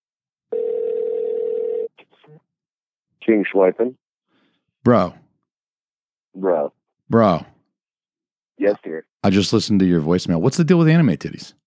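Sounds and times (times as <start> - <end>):
telephone tone while placing a call: 0.5 - 2.0
speech: 3.2 - 4.0, 4.8 - 5.2, 6.4 - 7.5, 8.6 - 11.6.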